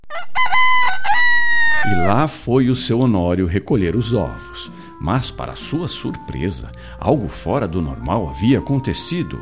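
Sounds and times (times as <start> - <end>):
rooster crowing: 0.1 - 2.2
speech: 1.9 - 9.4.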